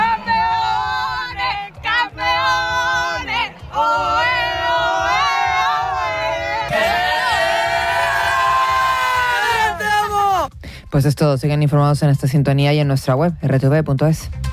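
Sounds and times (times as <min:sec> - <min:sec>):
crowd watching the football World Cup final roaring and cheering: 0:00.0 - 0:10.5
speech: 0:11.0 - 0:14.4.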